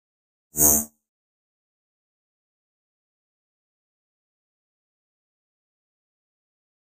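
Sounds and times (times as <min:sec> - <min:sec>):
electric buzz: 0:00.6 - 0:00.9.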